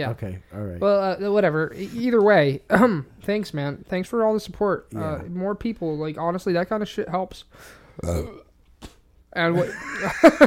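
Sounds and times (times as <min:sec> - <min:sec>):
speech: 0:00.0 - 0:08.4, 0:09.3 - 0:10.4
loud rough voiced burps: 0:08.0 - 0:08.6
laughter: 0:09.6 - 0:10.4.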